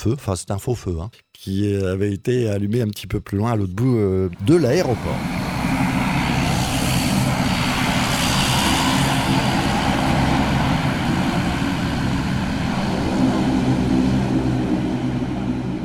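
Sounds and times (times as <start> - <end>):
speech: 0.0 - 5.5
Dash turboprop plane engines starting up and roaring: 4.4 - 15.8.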